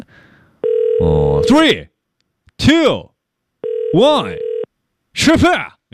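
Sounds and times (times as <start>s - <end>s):
steady electronic telephone ringback tone: 0.6s - 1.6s, 3.6s - 4.7s
speech: 1.0s - 1.9s, 2.6s - 3.1s, 3.9s - 4.5s, 5.2s - 5.9s.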